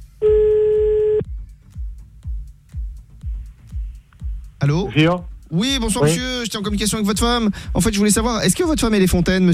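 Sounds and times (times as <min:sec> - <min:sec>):
telephone line tone while calling back: 0:00.2 - 0:01.3
speech: 0:04.9 - 0:09.5.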